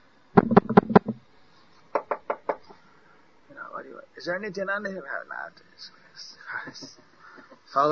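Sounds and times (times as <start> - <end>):
knocking on a door at night in Navadvip: 0.4 - 1.2
speech: 4.2 - 7.1, 7.7 - 7.9.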